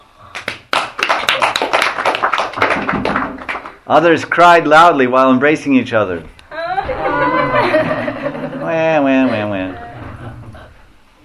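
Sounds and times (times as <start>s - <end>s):
crowd applauding: 0.3s - 3.8s
speech: 3.9s - 6.3s
laughter: 6.6s - 10.4s.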